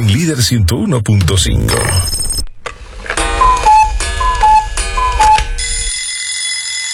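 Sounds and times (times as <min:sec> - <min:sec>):
speech: 0:00.2 - 0:02.2
alarm clock ringing with a rapid metallic clatter: 0:03.2 - 0:06.9.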